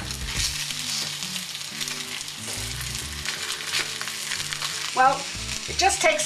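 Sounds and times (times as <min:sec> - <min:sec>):
schnitzel frying in a hot pan with a little oil: 0:00.0 - 0:06.2
speech: 0:05.0 - 0:06.2.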